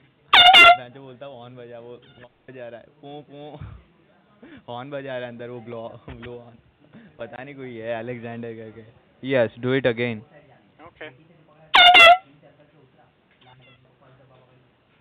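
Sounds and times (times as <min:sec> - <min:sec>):
air horn blast blown to keep a scammer busy: 0:00.4 - 0:00.8, 0:11.8 - 0:12.2
speech: 0:00.8 - 0:03.8, 0:04.4 - 0:10.4, 0:11.0 - 0:11.4.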